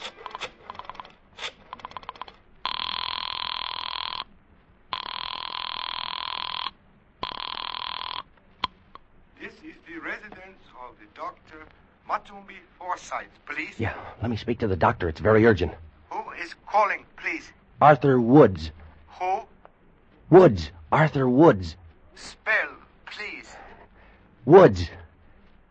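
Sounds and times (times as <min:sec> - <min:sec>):
telephone clicking as a number is dialed: 0:00.0 - 0:02.9
telephone ringing with long loud buzzing rings: 0:00.1 - 0:01.1, 0:01.7 - 0:04.3, 0:04.9 - 0:08.3
speech: 0:10.6 - 0:15.8, 0:16.7 - 0:18.8, 0:20.3 - 0:22.4, 0:24.5 - 0:25.0.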